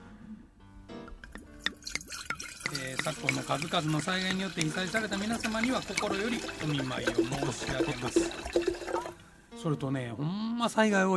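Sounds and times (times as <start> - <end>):
liquid pouring into a glass for a toast: 1.1 - 9.2
speech: 2.9 - 11.1.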